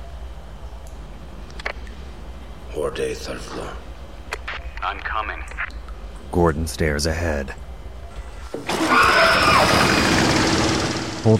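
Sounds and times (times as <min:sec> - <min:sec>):
speech: 0:02.8 - 0:03.9, 0:04.8 - 0:07.6
generator starting up: 0:08.5 - 0:11.3.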